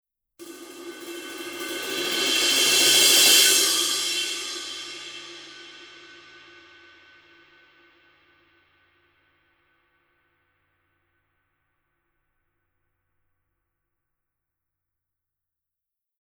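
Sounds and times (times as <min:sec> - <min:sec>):
22-inch crash cymbal roll: 0:00.4 - 0:07.8.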